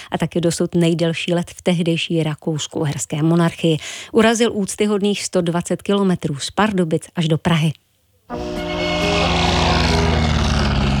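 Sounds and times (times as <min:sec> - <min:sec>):
speech: 0:00.1 - 0:08.6
early pioneer propeller airplane engine starting: 0:08.4 - 0:10.9.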